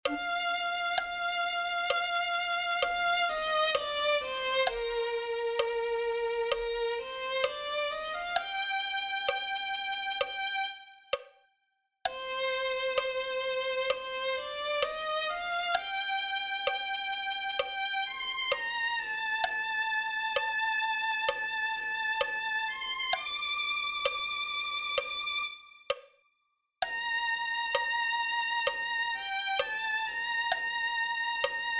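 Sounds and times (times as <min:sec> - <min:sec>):
violin piece: 0:00.0 - 0:11.3, 0:12.1 - 0:26.0, 0:26.8 - 0:31.7.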